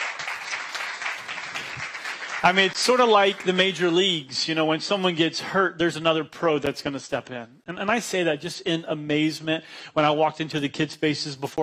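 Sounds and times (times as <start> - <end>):
audience applause: 0.0 - 2.8
speech: 2.4 - 11.6.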